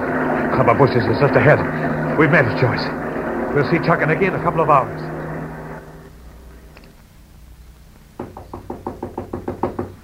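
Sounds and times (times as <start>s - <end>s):
speech: 0.6s - 5.2s
knocking on a door: 8.2s - 10.0s.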